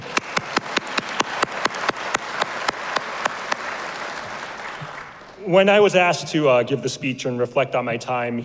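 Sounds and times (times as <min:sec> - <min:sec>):
graduates applauding at their graduation: 0:00.0 - 0:05.5
speech: 0:05.5 - 0:08.4.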